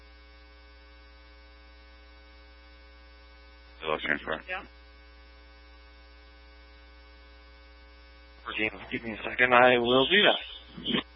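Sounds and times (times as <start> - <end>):
speech: 3.9 - 4.8, 8.5 - 11.0
electronic alarm buzzing: 9.5 - 11.1.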